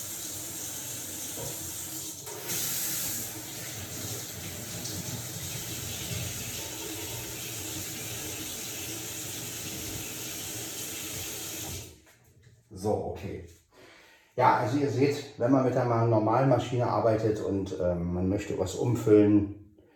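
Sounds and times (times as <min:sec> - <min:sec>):
tap water gushing while rinsing out a coffee pot: 0:00.0 - 0:12.0
speech: 0:12.8 - 0:13.6, 0:14.4 - 0:19.6.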